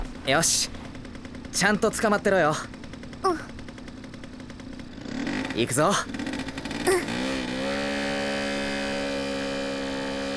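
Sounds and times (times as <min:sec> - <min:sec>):
speech: 0:00.3 - 0:00.8, 0:01.6 - 0:03.5, 0:05.6 - 0:06.2
small moped engine revving: 0:02.9 - 0:10.3.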